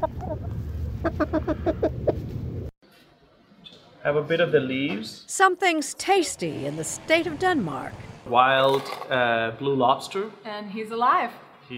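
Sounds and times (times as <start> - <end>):
chicken clucking: 0.0 - 2.2
speech: 4.0 - 11.7.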